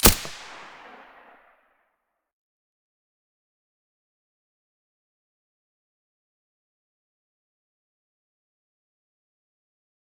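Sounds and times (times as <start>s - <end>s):
VSS rifle silencer gunshots: 0.0s - 1.3s.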